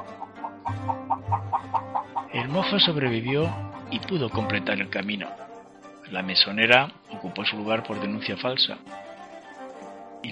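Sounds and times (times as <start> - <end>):
hen crowing cackle of sharp clucks: 0.0 - 3.8
speech: 2.4 - 5.5, 6.1 - 9.0.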